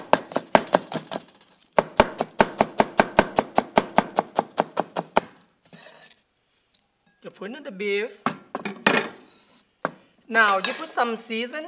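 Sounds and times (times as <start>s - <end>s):
knife chopping onions for a beef stir-fry: 0.0s - 5.5s
speech: 7.4s - 8.3s, 10.3s - 11.6s.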